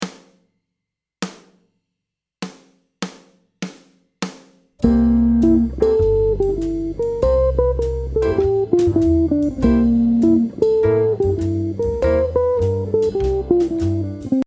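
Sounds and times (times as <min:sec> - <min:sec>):
jazz guitar arpeggios: 0:04.8 - 0:14.4.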